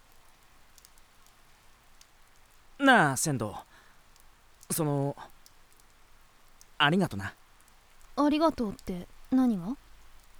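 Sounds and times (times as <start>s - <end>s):
steady rain: 0.0s - 10.3s
speech: 2.9s - 3.7s, 4.7s - 5.3s, 6.8s - 7.4s, 8.2s - 9.8s.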